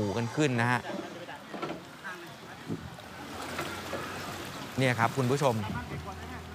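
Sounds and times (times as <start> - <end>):
speech: 0.0 - 1.0, 4.8 - 5.9
faint indistinct voices: 0.0 - 6.5
flat-bottomed boat carrying pigs moving through swift floodwater: 0.0 - 6.5.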